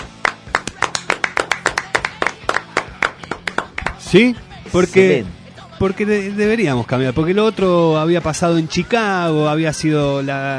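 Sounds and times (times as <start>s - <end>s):
rapid steady hand clapping: 0.0s - 4.2s
speech: 4.1s - 10.5s.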